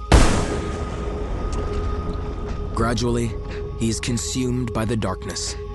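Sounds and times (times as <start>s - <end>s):
gunshot fired at a lake: 0.1s - 2.6s
speech: 2.8s - 5.6s.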